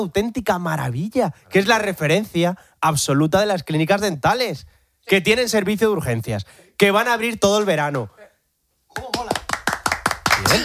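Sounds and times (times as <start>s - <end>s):
speech: 0.0s - 8.2s
audience applause: 9.0s - 10.6s.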